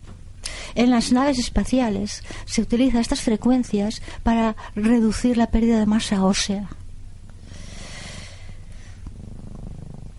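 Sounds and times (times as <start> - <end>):
speech: 0.8 - 6.8
cat purring: 7.4 - 10.1.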